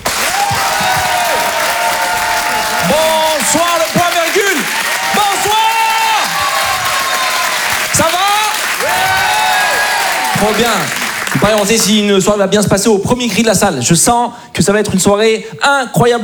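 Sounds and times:
live comedy club audience clapping: 0.0 - 12.2
speech: 10.4 - 16.2.

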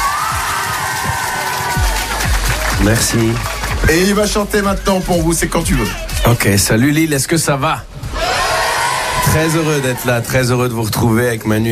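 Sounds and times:
audience at a live show cheering and applauding: 0.0 - 6.3, 8.1 - 10.6
speech: 2.8 - 8.0, 9.3 - 11.7.

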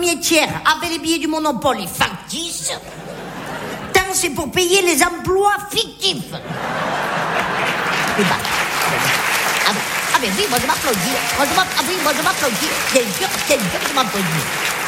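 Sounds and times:
speech: 0.0 - 3.2, 4.1 - 14.8
laughter: 2.8 - 4.0, 6.4 - 14.8
hand clapping: 7.4 - 14.8
indistinct voices murmuring: 8.0 - 14.8.

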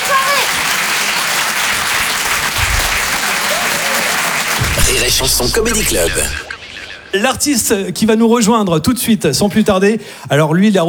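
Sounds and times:
comedy club audience applause: 0.0 - 7.2
speech: 5.1 - 6.5, 7.1 - 10.8.

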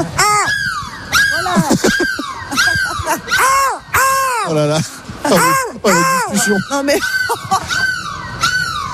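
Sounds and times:
person on a bus imitating a seagull as a goodbye: 0.0 - 4.6, 5.3 - 7.3
speech: 4.5 - 7.8.

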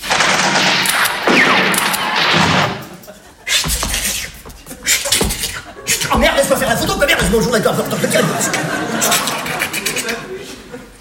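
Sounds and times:
gunfire from troops firing at will on command: 0.0 - 3.0
laughter: 2.8 - 11.0
speech: 7.4 - 9.5.

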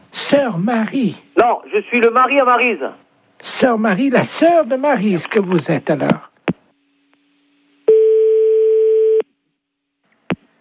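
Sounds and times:
speech: 0.2 - 6.3
telephone busy tone after a call is cut off: 7.9 - 9.3.

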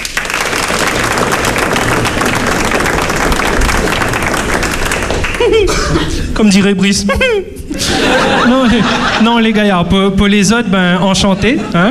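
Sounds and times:
crowd applause: 0.0 - 6.2
laughter: 5.1 - 6.4, 7.7 - 9.7, 11.3 - 11.8
speech: 6.4 - 11.8.

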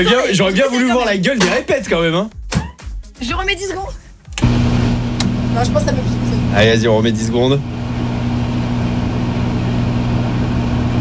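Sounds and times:
speech: 0.0 - 2.4, 3.2 - 4.0, 5.6 - 7.8
microwave oven running a heating cycle with electrical hum: 4.2 - 10.9.

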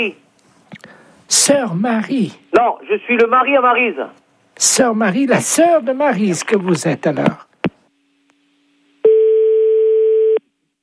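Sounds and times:
speech: 0.0 - 7.5
telephone busy tone after a call is cut off: 9.0 - 10.5.

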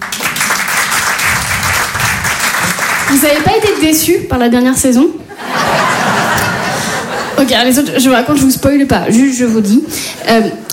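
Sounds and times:
live stand-up comedy audience applause: 0.0 - 3.8
speech: 3.1 - 5.3, 7.4 - 10.7
laughter: 5.3 - 7.5.

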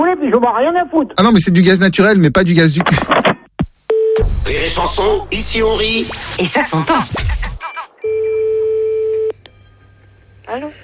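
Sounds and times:
speech: 0.3 - 3.3, 4.6 - 7.5
telephone call tone during a radio phone-in: 7.6 - 9.9.

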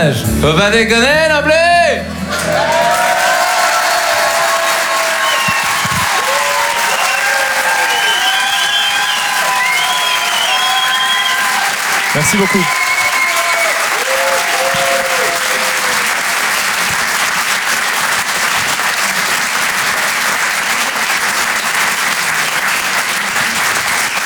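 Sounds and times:
speech: 0.0 - 2.7, 12.2 - 12.8
audience cheers: 2.1 - 24.2
large audience applauding: 2.1 - 24.2
shrill whistles from audience: 2.5 - 16.1.

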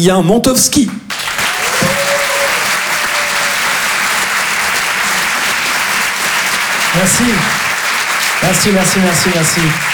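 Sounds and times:
speech: 0.0 - 1.0, 6.9 - 7.6, 8.4 - 9.9
audience applause at a live show: 0.7 - 9.9
people shouting: 1.4 - 3.8.

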